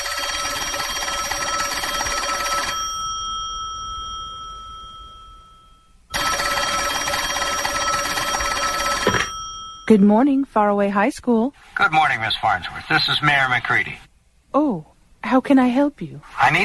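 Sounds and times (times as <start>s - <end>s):
telephone ringing: 0.0s - 10.0s
speech: 9.9s - 16.6s.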